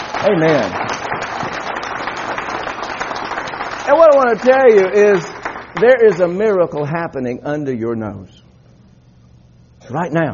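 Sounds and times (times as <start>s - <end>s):
congregation clapping hands at a worship service: 0.0s - 7.4s
speech: 0.2s - 0.8s, 3.9s - 8.4s, 9.9s - 10.3s.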